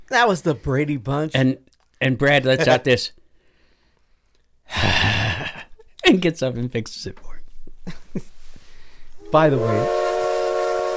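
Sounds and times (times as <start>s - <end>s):
speech: 0.1s - 3.2s, 6.1s - 7.3s, 7.9s - 8.4s, 9.3s - 10.0s
steam train whistle blast: 9.2s - 10.9s.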